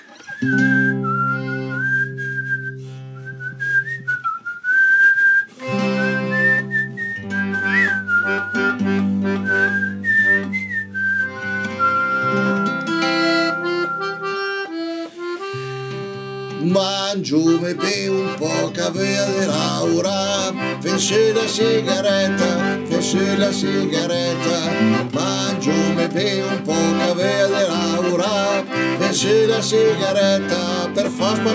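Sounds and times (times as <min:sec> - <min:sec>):
person whistling a song's opening melody: 0:00.0 - 0:15.6, 0:17.4 - 0:31.5
speech: 0:00.4 - 0:00.9, 0:23.1 - 0:25.2, 0:29.2 - 0:31.5
sustained instrumental chords: 0:05.6 - 0:06.7, 0:07.5 - 0:10.5, 0:11.3 - 0:31.5.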